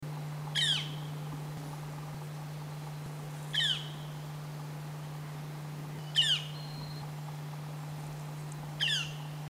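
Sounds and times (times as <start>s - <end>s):
steady low hum: 0.0s - 9.4s
harsh downward-sweeping bird calls rich in overtones: 0.6s - 1.2s, 3.5s - 4.2s, 6.0s - 7.0s, 8.8s - 9.4s.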